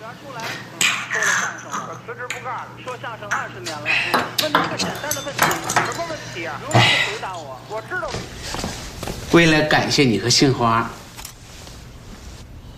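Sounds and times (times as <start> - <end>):
steady low hum: 0.0 - 12.7
speech: 2.1 - 11.0
drinking glasses clinking in a festive toast: 4.1 - 6.8.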